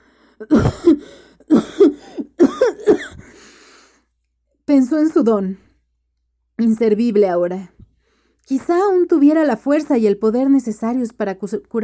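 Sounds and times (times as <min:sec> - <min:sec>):
speech: 0:00.4 - 0:01.6, 0:04.8 - 0:05.7, 0:06.6 - 0:07.7, 0:08.5 - 0:11.8
man coughing harshly while choking on thick foul-smelling air: 0:00.4 - 0:03.4.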